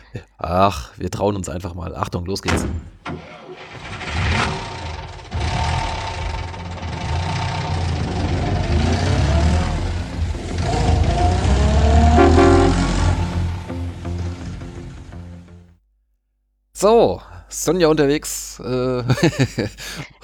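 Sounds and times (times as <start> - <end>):
speech: 0.1 - 4.0, 16.8 - 20.2
car engine starting, revving and idling in a groundhopping podcast jingle: 2.9 - 15.6
laughter: 19.0 - 20.2.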